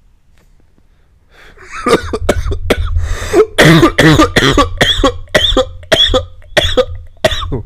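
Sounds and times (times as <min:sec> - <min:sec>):
person coughing harshly after vaping: 0:01.7 - 0:07.6.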